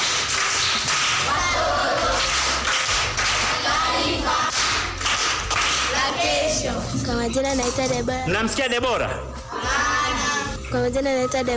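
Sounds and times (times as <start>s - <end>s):
group clapping for a pupil at a primary school session: 0.0s - 6.6s, 9.6s - 10.3s
speech: 7.3s - 9.3s, 10.7s - 11.5s.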